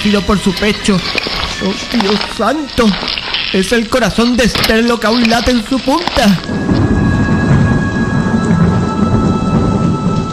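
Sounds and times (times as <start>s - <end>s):
speech: 0.0s - 6.8s
rain falling in a storm: 0.0s - 10.3s
deep rumbling thunder in a storm: 5.6s - 10.3s.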